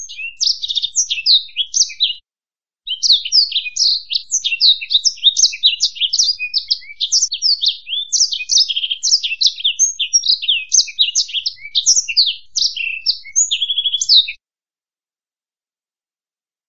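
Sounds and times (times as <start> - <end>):
black-throated canary singing: 0.0 - 2.2, 2.9 - 14.4.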